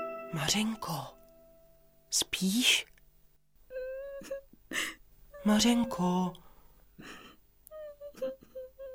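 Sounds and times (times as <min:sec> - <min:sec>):
speech: 0:00.5 - 0:01.1, 0:02.1 - 0:02.9, 0:04.2 - 0:06.4, 0:07.0 - 0:07.2
girl crying and whimpering: 0:03.7 - 0:06.1, 0:07.1 - 0:08.9.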